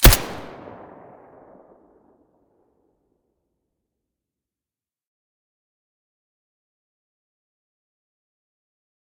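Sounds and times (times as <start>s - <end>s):
suppressed Colt 1911 pistol shot: 0.0s - 1.6s.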